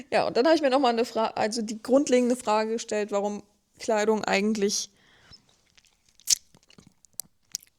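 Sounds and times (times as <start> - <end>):
speech: 0.1 - 5.0
mouth clicks and smacks: 5.3 - 7.7
wet gulping burst of a failed attempt to swallow: 5.6 - 7.7.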